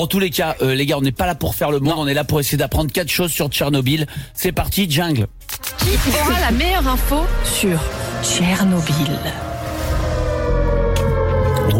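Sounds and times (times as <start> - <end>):
speech: 0.0 - 9.5
siren sound effect: 7.0 - 11.7.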